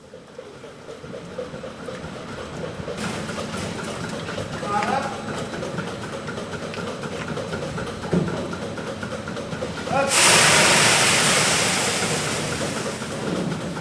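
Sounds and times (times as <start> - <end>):
steady mechanical rumble and hum of milking parlour machinery: 0.0 - 13.7
loud rushing hiss of air in a milking parlour: 10.1 - 13.2.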